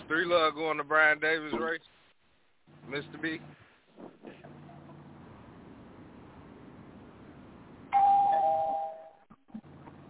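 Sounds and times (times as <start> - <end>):
speech: 0.1 - 2.0, 2.9 - 4.4
single electronic doorbell chime: 7.9 - 9.2.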